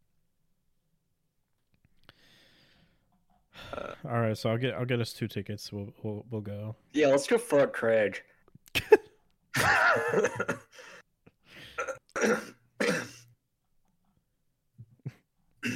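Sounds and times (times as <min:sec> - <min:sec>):
faint breathy sounds: 0:02.0 - 0:04.0, 0:10.7 - 0:11.8
speech: 0:04.0 - 0:09.0, 0:09.6 - 0:10.9
person clearing throat: 0:11.8 - 0:13.3, 0:15.6 - 0:15.7.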